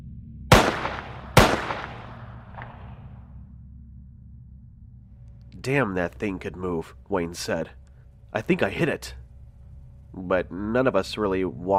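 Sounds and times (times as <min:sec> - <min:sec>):
handgun shots fired from a gun drawn from a holster: 0:00.5 - 0:02.9
speech: 0:05.6 - 0:09.2, 0:10.2 - 0:11.7.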